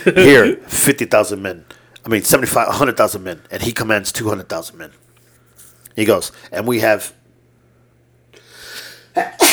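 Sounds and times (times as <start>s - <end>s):
speech: 0.0s - 5.0s, 6.0s - 7.2s, 9.2s - 9.5s
person sneezing: 8.7s - 9.5s.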